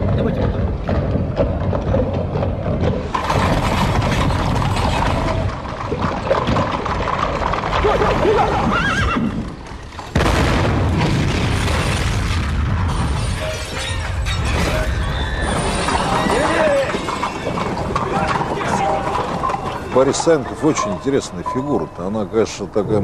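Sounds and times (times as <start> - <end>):
hooves clattering: 0.0 - 10.2, 13.0 - 23.0
speech: 1.4 - 1.6, 20.0 - 23.0
horses whinnying: 2.9 - 9.9, 14.8 - 20.4
loud explosion on a street in a film scene: 10.1 - 13.4.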